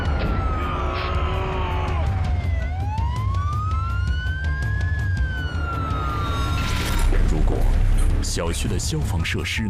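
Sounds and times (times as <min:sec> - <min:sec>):
siren of a stuck fire truck wailing: 0:00.0 - 0:07.1
speech: 0:08.4 - 0:09.6.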